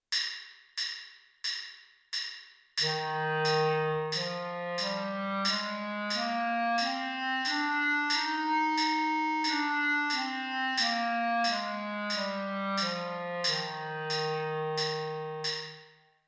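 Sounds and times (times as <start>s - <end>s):
clarinet playing an F major scale: 2.8s - 15.7s.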